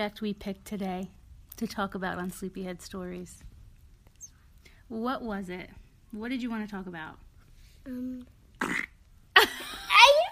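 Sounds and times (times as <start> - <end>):
speech: 0.0 - 3.5, 4.9 - 7.2, 7.8 - 8.8
fart noises: 8.5 - 9.1.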